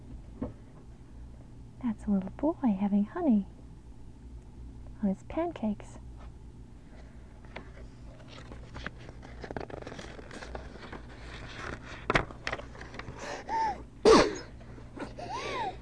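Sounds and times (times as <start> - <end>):
speech: 1.8 - 3.6, 5.0 - 6.0
rustling: 7.7 - 13.2
person sneezing: 13.5 - 15.8.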